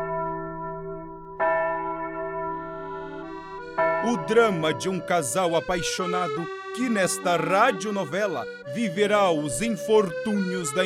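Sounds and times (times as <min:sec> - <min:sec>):
church bells tolling: 0:00.0 - 0:08.6
speech: 0:04.0 - 0:10.8.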